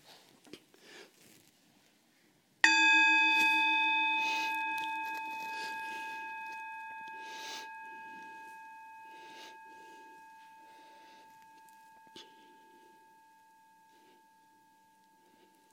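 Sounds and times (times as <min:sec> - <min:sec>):
soft breathing: 0:00.0 - 0:01.4, 0:04.1 - 0:15.7
gong being struck: 0:02.6 - 0:14.2.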